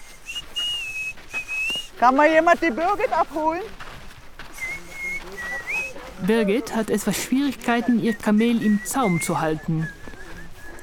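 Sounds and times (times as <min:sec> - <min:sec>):
herder whistling a melody: 0:00.0 - 0:01.9, 0:04.6 - 0:05.9, 0:08.6 - 0:10.8
speech: 0:02.0 - 0:03.8, 0:06.2 - 0:10.0.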